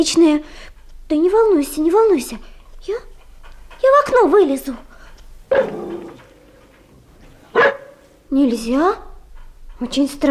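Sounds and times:
speech: 0:00.0 - 0:03.1, 0:03.8 - 0:04.9, 0:05.5 - 0:06.1, 0:08.3 - 0:09.1, 0:09.8 - 0:10.2
dog barking with a drawn-out tonal whine: 0:05.5 - 0:08.1.

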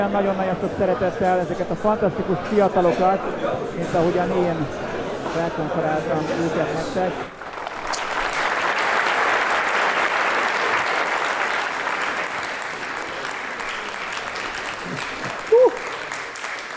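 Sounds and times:
speech: 0:00.0 - 0:07.4
audience applause at a motivational trainer meeting: 0:07.3 - 0:16.7.

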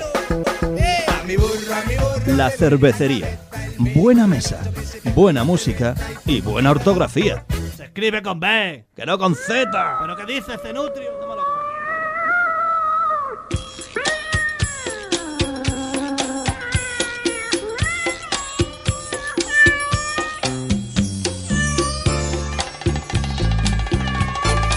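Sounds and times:
speech: 0:00.4 - 0:11.2
cat meowing at night in an alley: 0:09.6 - 0:22.8, 0:23.5 - 0:24.7.

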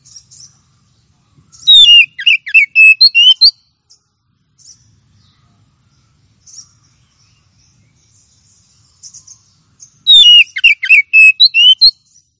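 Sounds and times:
Oriental magpie-robin singing: 0:00.0 - 0:05.0, 0:05.9 - 0:12.3.

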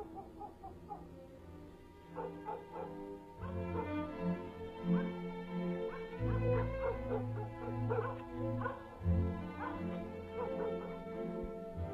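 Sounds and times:
village dogs whimpering at night: 0:00.0 - 0:01.2, 0:02.2 - 0:04.2, 0:05.8 - 0:11.2
village dogs barking at night: 0:00.0 - 0:01.3, 0:02.0 - 0:11.8.

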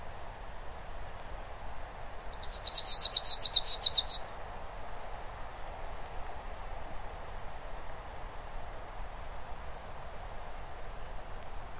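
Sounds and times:
low steady background noise: 0:00.0 - 0:11.7
bird trill: 0:02.3 - 0:04.3.

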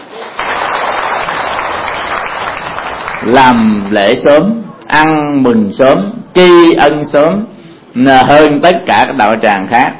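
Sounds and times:
audience applause at a Buddhist temple gathering celebrating Vietnamese Teachers' Day: 0:00.0 - 0:03.6
speech: 0:03.2 - 0:09.9.

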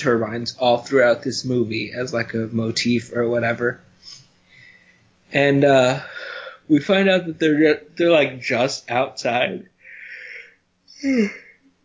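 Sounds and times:
speech: 0:00.0 - 0:04.2, 0:05.3 - 0:09.7, 0:11.0 - 0:11.4
single human yawn with downward-sliding pitch: 0:09.9 - 0:11.7.

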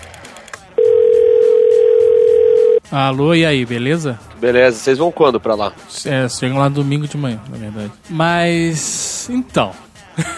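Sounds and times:
telephone dial tone while calling someone: 0:00.8 - 0:02.8
speech: 0:02.9 - 0:10.3.

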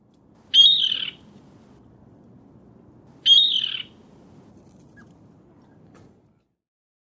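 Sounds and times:
low background noise: 0:00.0 - 0:06.6
rail giving harsh squawking prattling calls: 0:00.4 - 0:01.4, 0:03.2 - 0:04.1.

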